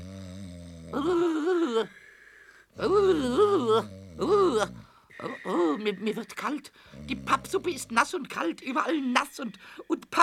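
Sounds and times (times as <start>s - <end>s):
person imitating loud exaggerated snoring: 0.0s - 2.0s, 2.8s - 8.0s
speech: 0.9s - 2.0s, 2.8s - 10.2s.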